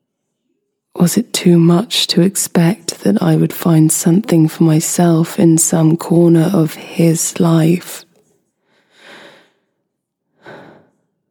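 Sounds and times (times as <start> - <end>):
speech: 1.0 - 8.1
man breathing as he falls asleep: 8.6 - 9.7, 10.4 - 11.1.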